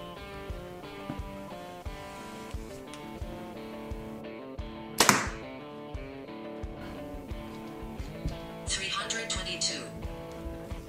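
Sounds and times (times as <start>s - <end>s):
music: 0.0s - 10.8s
compound bow releasing a 350-grain arrow: 4.9s - 5.5s.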